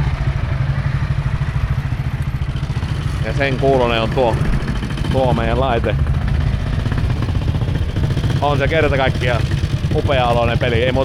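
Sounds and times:
large car engine rumble: 0:00.0 - 0:11.0
speech: 0:03.3 - 0:06.1, 0:08.4 - 0:09.4, 0:10.0 - 0:11.0.

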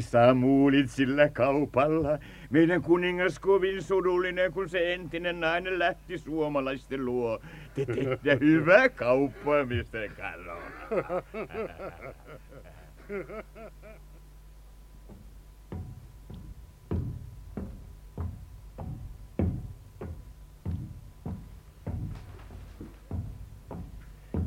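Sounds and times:
speech: 0:00.0 - 0:14.0
person laughing or vocalizing: 0:07.7 - 0:08.6, 0:09.4 - 0:14.2
banging on a steel door: 0:15.0 - 0:24.4.

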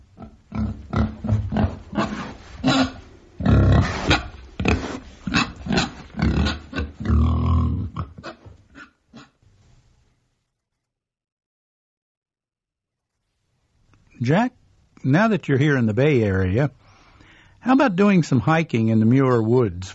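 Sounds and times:
pig grunting and oinking: 0:00.0 - 0:09.4
speech: 0:14.3 - 0:16.8, 0:17.6 - 0:19.9.

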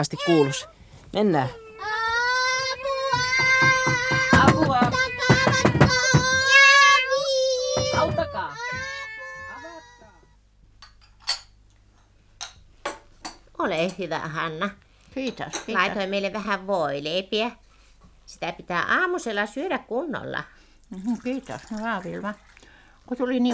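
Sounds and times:
Valais Blacknose sheep bleating loudly: 0:00.0 - 0:00.7, 0:01.5 - 0:10.1
speech: 0:00.0 - 0:01.6, 0:13.8 - 0:17.6, 0:18.3 - 0:22.5, 0:23.1 - 0:23.5.

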